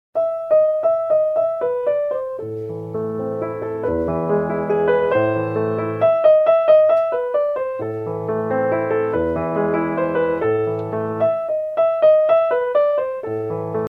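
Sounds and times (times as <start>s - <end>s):
piano instrumental ringtone: 0.2s - 13.8s.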